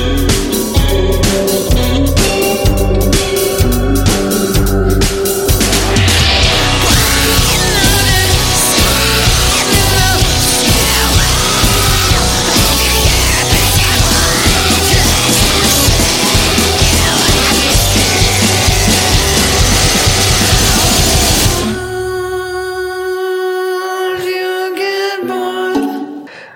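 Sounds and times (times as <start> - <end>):
indie rock passage with driving drums and layered guitars: 0.0 - 26.5.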